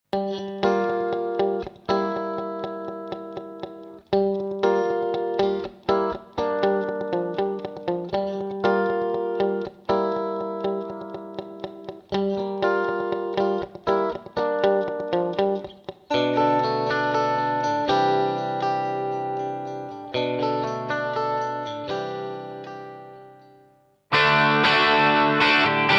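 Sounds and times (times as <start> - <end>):
guitar through Roland SRV 330 guitar chamber reverb: 0.1 - 25.9.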